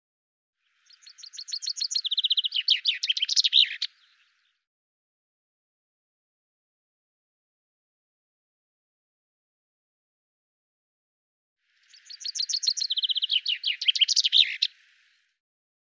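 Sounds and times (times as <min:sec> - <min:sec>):
Common chaffinch song: 0:00.6 - 0:04.6, 0:11.7 - 0:15.4.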